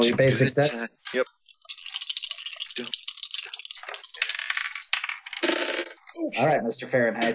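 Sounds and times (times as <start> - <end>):
speech: 0.0 - 1.4, 2.8 - 3.0, 6.2 - 7.3
dice rattling across a hard tabletop: 1.5 - 6.0.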